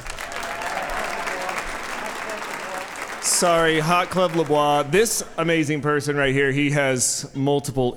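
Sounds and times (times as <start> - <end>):
audience applause: 0.0 - 5.1
speech: 3.4 - 7.9.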